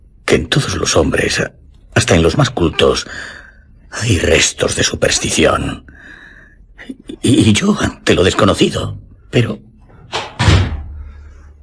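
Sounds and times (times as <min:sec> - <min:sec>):
speech: 0:00.3 - 0:06.0, 0:06.8 - 0:10.2
door slamming shut with heavy thud: 0:10.1 - 0:11.0.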